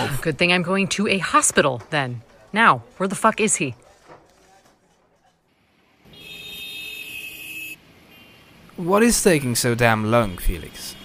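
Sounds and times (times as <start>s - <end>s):
speech: 0.0s - 3.8s, 8.8s - 11.0s
low rumbling jammed city street traffic: 0.0s - 11.0s
loud sustained horn blaring: 6.1s - 8.6s.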